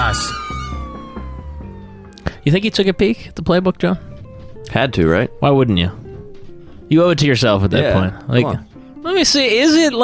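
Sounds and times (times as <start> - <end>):
police siren wailing: 0.0 - 4.4
low rumbling engine throb: 0.0 - 4.9
speech: 2.4 - 4.1, 4.7 - 6.0, 6.9 - 10.0.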